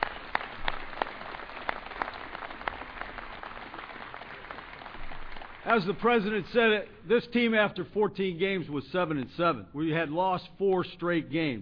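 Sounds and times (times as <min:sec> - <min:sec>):
audience applause: 0:00.0 - 0:06.3
speech: 0:05.7 - 0:11.6.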